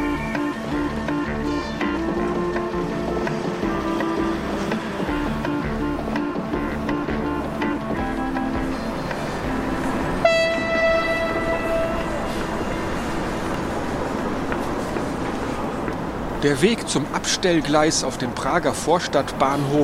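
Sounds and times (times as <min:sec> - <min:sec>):
train rumbling and rattling past: 0:00.0 - 0:19.8
sharp horn-like tone: 0:10.2 - 0:12.4
speech: 0:16.4 - 0:19.8.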